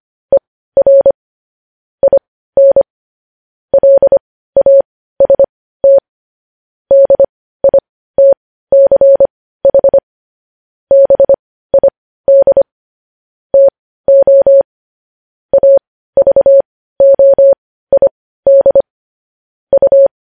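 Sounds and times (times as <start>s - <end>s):
Morse code beeps: 0.3s - 1.2s, 2.0s - 2.9s, 3.7s - 6.0s, 6.9s - 10.0s, 10.9s - 12.7s, 13.6s - 14.7s, 15.5s - 18.9s, 19.7s - 20.1s.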